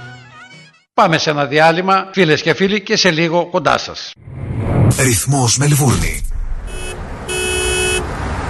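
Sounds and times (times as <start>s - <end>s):
speech: 1.0s - 6.3s
car horn honking: 6.6s - 8.2s.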